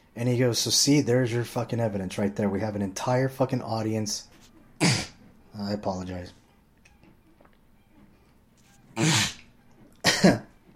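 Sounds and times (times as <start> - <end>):
speech: 0.2 - 4.3, 5.6 - 6.4
person clearing throat: 4.8 - 5.2, 9.0 - 9.4, 10.0 - 10.5.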